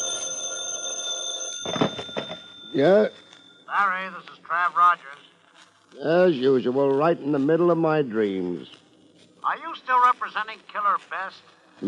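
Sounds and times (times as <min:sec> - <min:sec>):
telephone bell ringing: 0:00.0 - 0:03.7
speech: 0:02.8 - 0:05.3, 0:05.9 - 0:08.8, 0:09.4 - 0:11.8.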